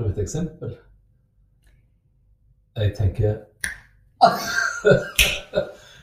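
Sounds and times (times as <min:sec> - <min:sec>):
speech: 0:00.1 - 0:00.9, 0:02.8 - 0:05.8
finger snapping: 0:03.6 - 0:03.9, 0:05.2 - 0:05.4
laughter: 0:04.2 - 0:05.9
breathy voice: 0:05.5 - 0:06.0.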